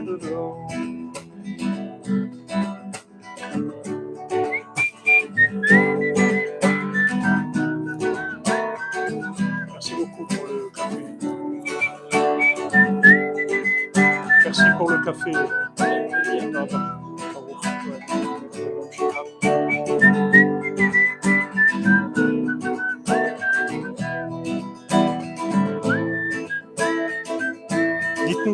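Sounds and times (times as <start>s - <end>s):
fuller rhythmic accompaniment: 0.0s - 28.5s
speech: 0.1s - 0.8s, 15.1s - 15.8s
high whistle-like melody: 4.2s - 28.5s.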